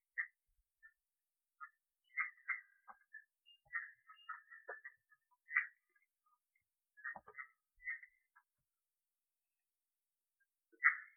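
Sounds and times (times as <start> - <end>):
red-eyed tree frog Agalychnis callidryas clicking and chucking calls: 1.6 - 6.0, 7.0 - 8.2, 10.8 - 11.1.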